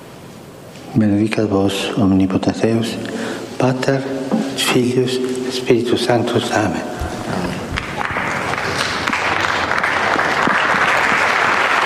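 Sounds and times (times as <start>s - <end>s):
speech: 0.9s - 7.6s
large indoor crowd applauding loudly: 6.8s - 11.8s.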